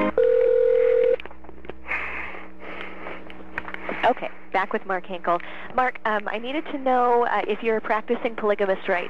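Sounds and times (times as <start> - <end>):
telephone line hum during a call transfer: 0.2 - 1.3
speech: 4.2 - 9.0.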